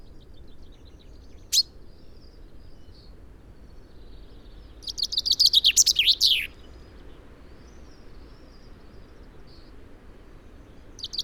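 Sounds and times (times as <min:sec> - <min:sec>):
steady low background noise: 0:00.0 - 0:11.2
common chaffinch Fringilla coelebs singing: 0:01.4 - 0:01.7, 0:04.8 - 0:06.7, 0:11.0 - 0:11.2.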